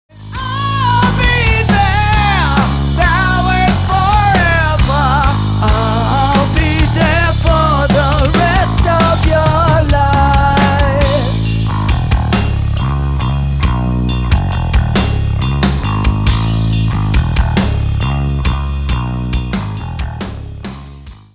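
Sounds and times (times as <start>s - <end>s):
backing track music: 0.1s - 21.3s.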